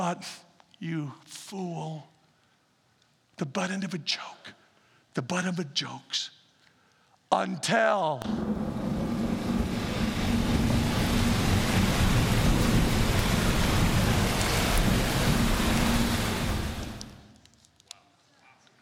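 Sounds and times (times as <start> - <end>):
speech: 0.0 - 2.1, 3.4 - 4.6, 5.2 - 6.4, 7.3 - 8.8
deep rumble of thunder: 8.2 - 17.3
heavy rainstorm: 8.2 - 17.3.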